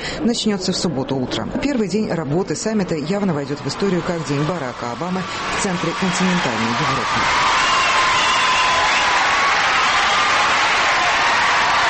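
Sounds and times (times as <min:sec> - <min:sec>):
speech: 0:00.2 - 0:07.6
large stadium crowd applause for a president's address: 0:03.1 - 0:11.8.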